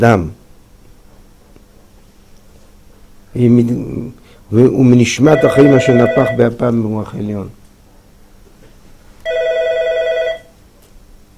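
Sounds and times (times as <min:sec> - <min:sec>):
speech: 0:00.0 - 0:00.4, 0:03.4 - 0:07.6
electronic telephone ringing: 0:05.2 - 0:06.5, 0:09.2 - 0:10.6.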